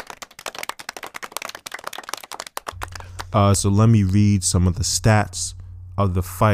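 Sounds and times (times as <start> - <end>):
quick dense clapping: 0.0 - 3.4
speech: 3.3 - 6.5.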